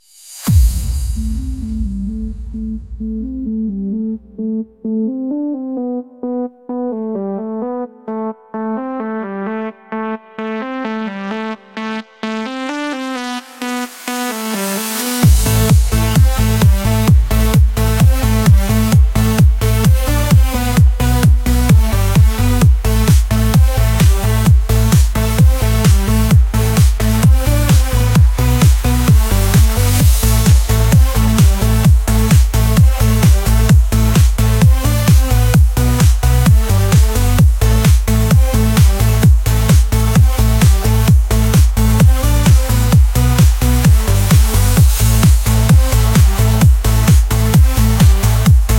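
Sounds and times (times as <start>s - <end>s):
electric surge bass: 0.3s - 5.5s, 15.2s - 48.7s.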